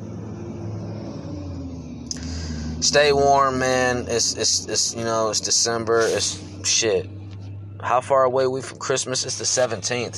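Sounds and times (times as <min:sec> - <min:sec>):
heavy semi-trucks passing with engine rumble and road noise: 0:00.0 - 0:10.1
speech: 0:02.8 - 0:07.2, 0:07.8 - 0:10.1.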